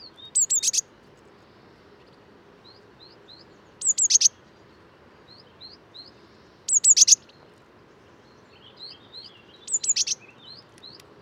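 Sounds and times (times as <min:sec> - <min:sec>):
Eurasian blue tit Cyanistes caeruleus calls: 0:00.2 - 0:00.9, 0:03.8 - 0:04.3, 0:06.7 - 0:07.3, 0:09.7 - 0:11.0.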